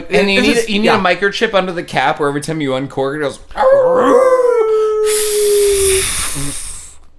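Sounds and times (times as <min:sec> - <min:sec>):
speech: 0:00.1 - 0:04.3
voice imitating a wolf howl: 0:03.6 - 0:06.3
rushing hiss of air: 0:05.1 - 0:07.0.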